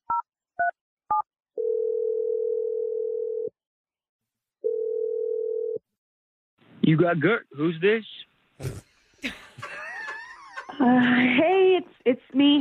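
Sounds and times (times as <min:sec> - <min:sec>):
telephone ringing tones: 0:01.6 - 0:03.5, 0:04.6 - 0:05.8
speech: 0:06.9 - 0:09.4, 0:10.8 - 0:12.5
laughter: 0:09.2 - 0:11.8.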